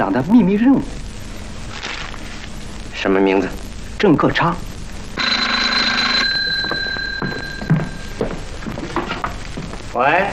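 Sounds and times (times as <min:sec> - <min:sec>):
speech: 0:00.0 - 0:01.1, 0:03.0 - 0:04.7, 0:10.0 - 0:10.3
telephone bell ringing: 0:05.2 - 0:09.3.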